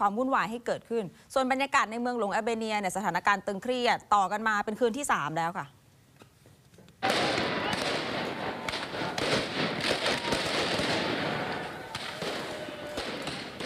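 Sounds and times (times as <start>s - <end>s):
speech: 0.0s - 5.8s
fireworks set off by protesters during street clashes with riot police in Tirana: 7.0s - 13.6s.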